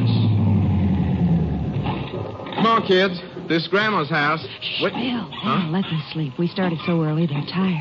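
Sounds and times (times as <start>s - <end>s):
sedan car engine rumbling as it pulls up and stops: 0.0s - 4.8s
speech: 2.7s - 7.7s.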